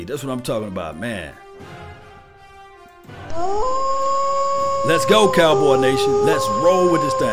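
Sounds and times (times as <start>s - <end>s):
speech: 0.0s - 1.8s, 3.1s - 3.8s, 4.8s - 7.3s
person howling like a wolf: 3.3s - 7.3s.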